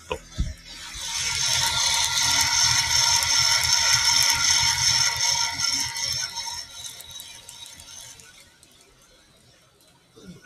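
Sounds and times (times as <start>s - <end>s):
Meister 2.5 coffee roaster hum: 0.0s - 10.4s
coffee beans crackling during second crack of a dark roast: 0.8s - 8.5s.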